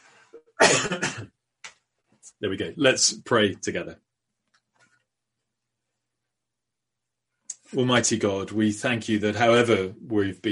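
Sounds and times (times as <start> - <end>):
harsh cough: 0.4 - 1.4
speech: 0.7 - 1.4, 2.4 - 4.1, 7.7 - 10.5.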